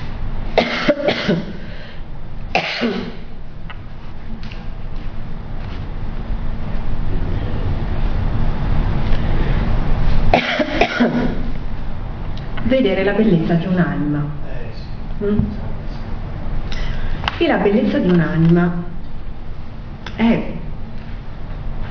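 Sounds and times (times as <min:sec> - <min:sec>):
low rumble: 0:00.0 - 0:21.8
person with a cough coughing: 0:00.6 - 0:01.7, 0:02.5 - 0:03.3, 0:10.3 - 0:11.5
speech: 0:01.3 - 0:01.5, 0:12.8 - 0:14.4, 0:15.2 - 0:15.6, 0:17.4 - 0:18.9, 0:20.2 - 0:20.5.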